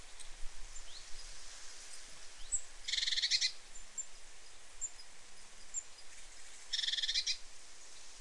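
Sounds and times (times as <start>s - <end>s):
steady background hiss: 0.0s - 8.1s
great tit Parus major harsh buzzy churring calls: 2.9s - 3.6s, 6.7s - 7.4s.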